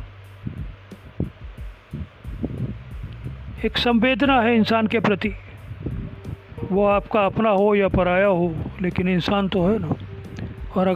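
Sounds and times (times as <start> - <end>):
pounding heartbeat sound effect: 0.0 - 3.6
low steady hum: 0.0 - 10.9
speech: 3.6 - 5.4, 6.7 - 10.0, 10.8 - 10.9.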